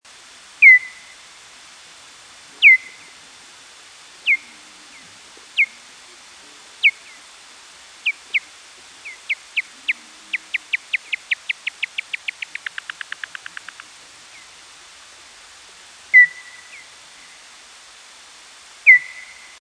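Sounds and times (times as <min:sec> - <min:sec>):
noctule bat feeding buzz slowed down: 0:02.9 - 0:14.6.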